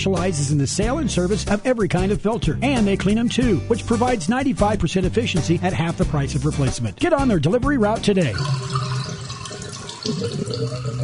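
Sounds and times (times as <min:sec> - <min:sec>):
speech: 0:00.0 - 0:08.8, 0:10.1 - 0:11.0
water running through household drains: 0:08.2 - 0:11.0.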